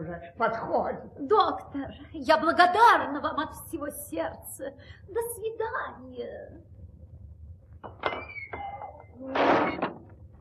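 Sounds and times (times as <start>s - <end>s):
speech: 0.0s - 6.7s, 7.8s - 10.0s
heavy cast-iron tower door shoved open with grinding creaking scrape: 7.9s - 10.2s.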